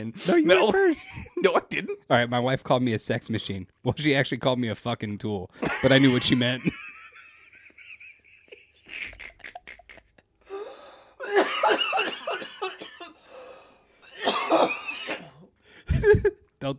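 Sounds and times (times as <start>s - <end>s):
speech: 0.0s - 6.8s, 16.0s - 16.7s
laughter: 5.6s - 10.3s, 15.9s - 16.5s
person in a harsh hacking coughing fit: 11.2s - 13.2s, 14.1s - 15.5s.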